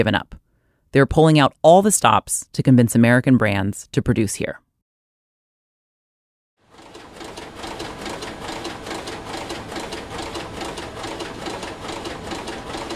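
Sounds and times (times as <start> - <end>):
speech: 0.0 - 4.6
automated knitting machine making a sweater in a knitwear factory: 6.7 - 12.9.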